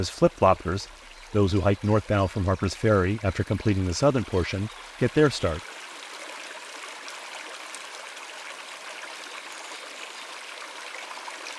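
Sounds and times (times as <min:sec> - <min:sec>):
speech: 0:00.0 - 0:05.8
running water of a small stream: 0:00.0 - 0:11.5.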